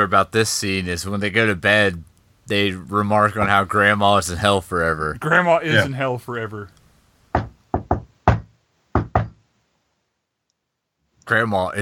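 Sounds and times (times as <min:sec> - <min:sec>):
speech: 0:00.0 - 0:06.8, 0:11.3 - 0:11.7
knocking on a wall: 0:07.3 - 0:09.4.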